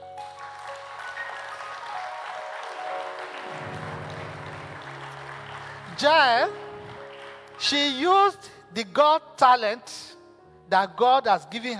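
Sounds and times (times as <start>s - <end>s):
large crowd applauding: 0.0s - 8.1s
speech: 6.0s - 6.7s, 7.6s - 11.7s.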